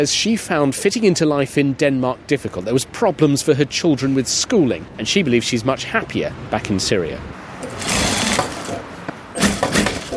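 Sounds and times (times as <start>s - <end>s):
speech: 0.0s - 8.2s
sewing machine whirring: 7.6s - 8.8s, 9.4s - 10.1s.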